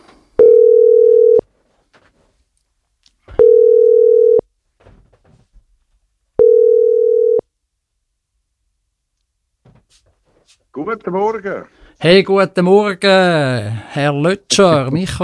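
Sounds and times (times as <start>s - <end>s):
ringback tone of a telephone call being placed: 0.4s - 1.4s, 3.3s - 4.4s, 6.4s - 7.4s
speech: 10.8s - 15.2s.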